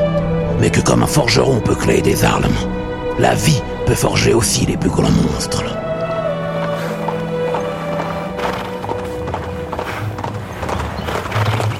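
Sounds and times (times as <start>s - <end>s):
speech: 0.6s - 5.8s
horse galloping with hooves clip-clopping: 5.9s - 11.7s.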